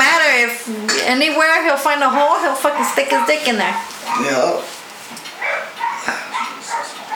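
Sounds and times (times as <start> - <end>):
speech: 0.7 - 5.2
dogs barking and yipping in short high bursts: 2.1 - 7.1
dogs whimpering: 2.6 - 4.7, 5.3 - 7.1.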